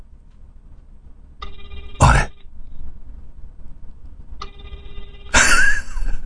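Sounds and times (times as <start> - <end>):
telephone ringing after a call has been dialed: 1.4 - 2.5, 4.4 - 6.2.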